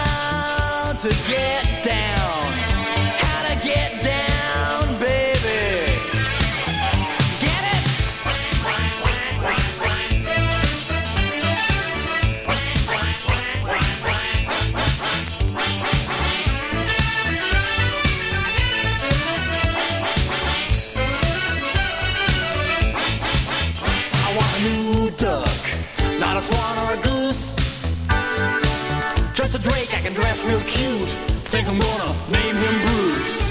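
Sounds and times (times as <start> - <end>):
loud busy pop song with full band: 0.0 - 33.4
speech: 1.0 - 1.7
duck-like quacks: 6.1 - 24.4.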